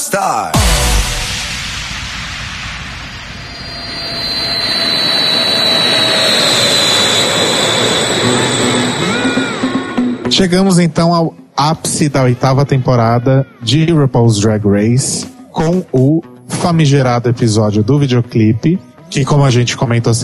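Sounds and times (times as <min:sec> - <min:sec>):
speech: 0:00.1 - 0:00.7, 0:10.4 - 0:20.2
jet airplane engine roaring with turbine whine: 0:00.9 - 0:10.7.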